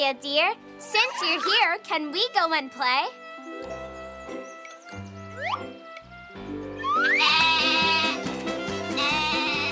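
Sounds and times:
speech: 0:00.0 - 0:03.7, 0:07.1 - 0:07.6
bouncy musical backing: 0:00.4 - 0:09.7
goat bleating: 0:07.1 - 0:08.2, 0:08.9 - 0:09.7.

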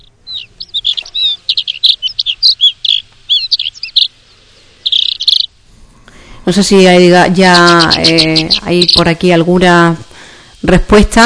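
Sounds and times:
bird calling in rapid high-pitched chirps and warbling phrases: 0:00.0 - 0:05.6, 0:06.6 - 0:09.9
speech: 0:06.5 - 0:10.0, 0:10.6 - 0:11.2.

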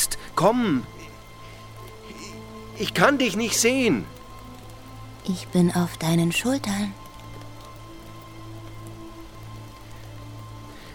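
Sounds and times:
scattered drips: 0:00.0 - 0:10.9
steady rain: 0:00.0 - 0:10.9
speech: 0:00.4 - 0:01.0, 0:02.8 - 0:04.2, 0:05.2 - 0:07.0.

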